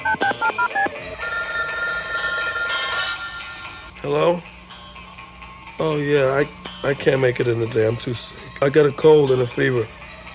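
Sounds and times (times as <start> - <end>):
short electronic dialing beeps: 0.0 - 1.5
steady telephone ringing: 0.0 - 3.9
speech: 4.0 - 4.5, 5.8 - 10.0.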